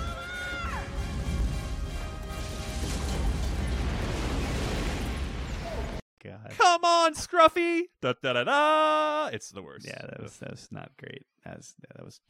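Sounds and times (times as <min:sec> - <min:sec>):
loud sustained cinematic explosion: 0:00.9 - 0:06.0
speech: 0:06.3 - 0:12.2.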